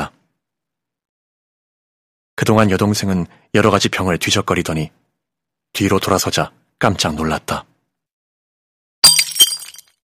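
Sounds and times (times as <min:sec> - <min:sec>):
speech: 0:02.4 - 0:05.0, 0:05.7 - 0:07.7
glass bottle hitting the floor and shattering: 0:09.0 - 0:10.0
tinkling glass shards scattering: 0:09.1 - 0:09.9.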